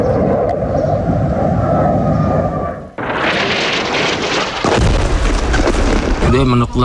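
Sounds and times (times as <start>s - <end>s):
military aircraft roaring overhead: 0.0s - 4.6s
heavy rumbling explosion: 3.0s - 6.8s
voice: 6.2s - 6.8s.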